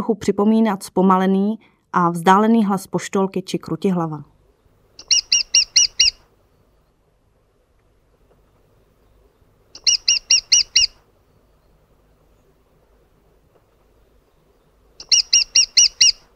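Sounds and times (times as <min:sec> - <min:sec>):
speech: 0:00.0 - 0:04.3
lesser spotted woodpecker high rapid ki-ki-ki call: 0:05.0 - 0:06.3, 0:09.8 - 0:11.1, 0:15.0 - 0:16.3.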